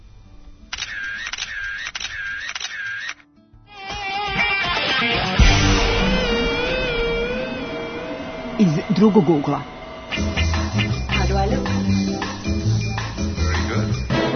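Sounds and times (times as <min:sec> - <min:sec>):
camera shutter clicks: 0:00.7 - 0:03.2
dense wash of layered tones and noise: 0:04.4 - 0:14.3
speech: 0:08.9 - 0:12.6.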